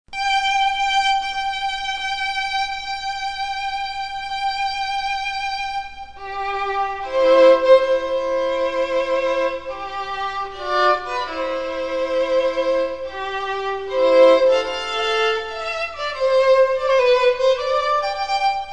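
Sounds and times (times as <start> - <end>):
violin playing a wedding march as professional backing track: 0.2 - 18.7.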